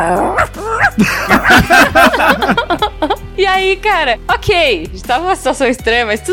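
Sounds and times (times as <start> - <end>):
speech: 0.0 - 0.4, 1.0 - 2.3, 3.5 - 6.3
person vocally imitating an old poodle barking and whining: 0.0 - 1.0
person chuckling: 0.8 - 3.2.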